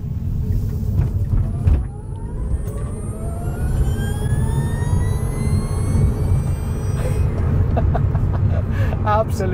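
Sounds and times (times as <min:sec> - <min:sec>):
low road rumble inside the car cabin: 0:00.0 - 0:09.5
Tesla electric car motor whining upward in pitch: 0:00.8 - 0:08.0.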